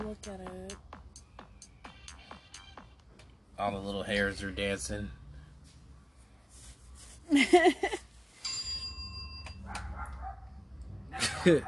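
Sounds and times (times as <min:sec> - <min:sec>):
speech: 0:00.1 - 0:00.9, 0:03.6 - 0:05.2, 0:07.3 - 0:08.1, 0:11.4 - 0:11.6
sustained ringing bell tone: 0:08.4 - 0:09.7
dogs barking and yipping: 0:09.6 - 0:11.6.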